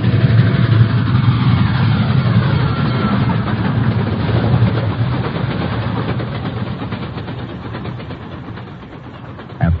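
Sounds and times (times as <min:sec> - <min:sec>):
train approaching on the tracks roaring: 0:00.0 - 0:09.7
faint rhythmic clatter of train on tracks: 0:04.0 - 0:09.7.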